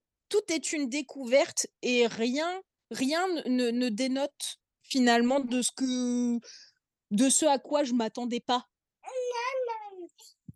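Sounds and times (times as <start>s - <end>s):
speech: 0.3s - 8.7s
young child babbling a sing-song greeting: 9.0s - 10.2s.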